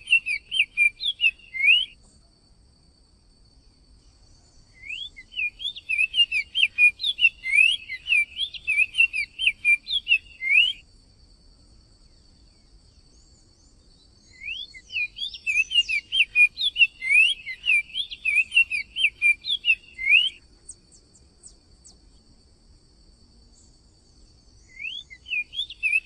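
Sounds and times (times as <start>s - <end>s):
Cinnamon tanager song: 0.0s - 2.0s, 4.4s - 10.9s, 13.2s - 22.0s, 24.6s - 26.0s.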